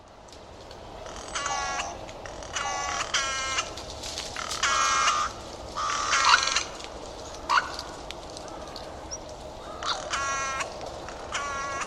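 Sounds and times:
background hiss: 0:00.0 - 0:11.8
bird giving harsh nasal cawing calls: 0:01.0 - 0:11.8.

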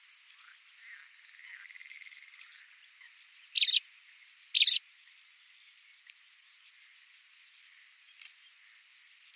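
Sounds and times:
white wagtail calls: 0:03.6 - 0:03.8, 0:04.6 - 0:04.8.

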